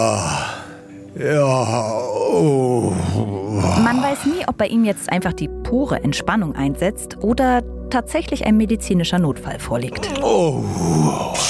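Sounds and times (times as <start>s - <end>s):
person in a sauna groaning and sighing with each breath: 0.0s - 4.4s, 9.9s - 11.4s
speech: 1.2s - 11.4s.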